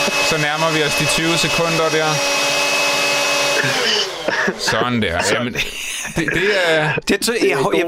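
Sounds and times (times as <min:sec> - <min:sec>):
kitchen blender running: 0:00.0 - 0:05.6
speech: 0:00.3 - 0:02.6, 0:03.6 - 0:07.8
laughter: 0:03.6 - 0:07.8.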